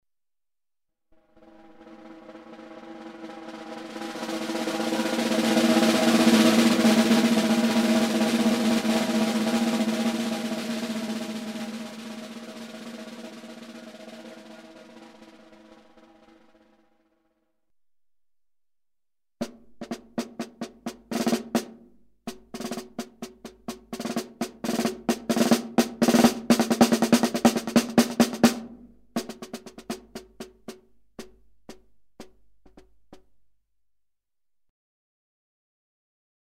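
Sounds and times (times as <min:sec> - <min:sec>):
snare drum: 0:01.6 - 0:16.7, 0:19.4 - 0:33.5.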